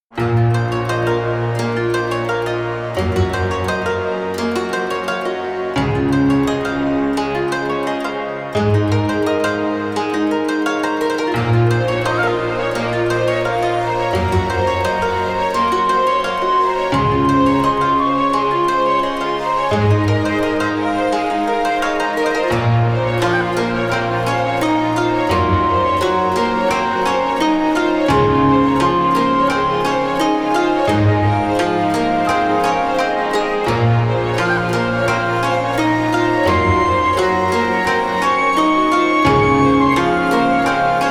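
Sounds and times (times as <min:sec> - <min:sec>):
Japanese style trailer music: 0:00.1 - 0:41.0.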